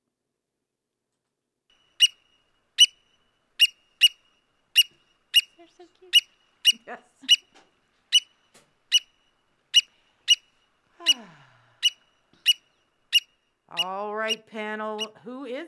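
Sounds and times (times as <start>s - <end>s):
black oystercatcher yelping and whistling: 1.9s - 15.2s
people murmuring: 5.6s - 7.6s
speech: 5.7s - 7.8s.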